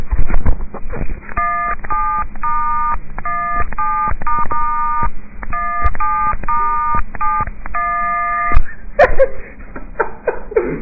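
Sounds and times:
cover song tapped out on cellphone keypad tones: 1.4 - 8.7
laughter: 8.7 - 10.7.

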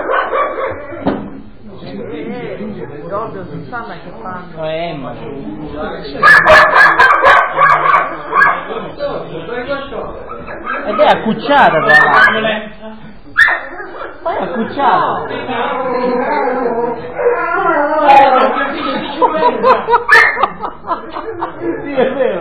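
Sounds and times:
dog barking: 0.0 - 1.0, 6.2 - 8.7, 10.3 - 12.6, 13.4 - 14.2, 19.9 - 20.5
speech: 3.1 - 7.3, 8.7 - 13.0, 14.4 - 17.4, 18.0 - 22.3
laughter: 10.6 - 13.4, 14.0 - 22.3.

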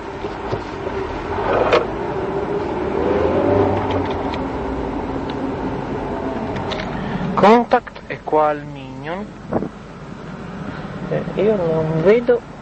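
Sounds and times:
broadband road and motor noise: 0.0 - 12.6
car engine accelerating: 0.2 - 7.6
speech: 8.4 - 9.7, 11.2 - 12.5.

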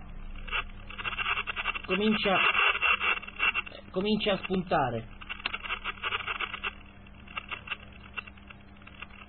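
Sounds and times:
narrow tinny radio hiss and crackle: 0.0 - 9.2
faint thin band-limited transmitted voice over radio: 1.9 - 2.6, 3.7 - 5.1
speech: 1.9 - 2.6, 3.9 - 5.2.

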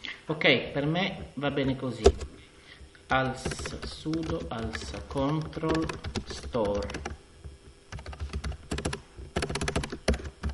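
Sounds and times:
speech: 0.3 - 2.3, 3.1 - 7.2
keystrokes on a computer keyboard: 3.4 - 7.2, 7.9 - 10.5.

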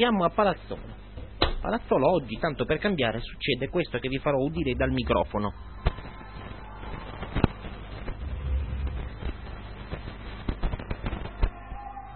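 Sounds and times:
speech: 0.0 - 1.0, 1.6 - 5.8
low rumble: 4.4 - 10.6
fireworks bursts cracking and thudding outdoors in Palazzolo: 4.5 - 11.7.

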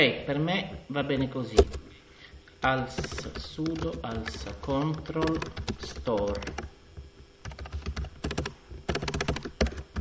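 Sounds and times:
speech: 0.0 - 1.9, 2.6 - 6.8
typing on a computer keyboard: 3.0 - 6.7, 7.4 - 10.0.

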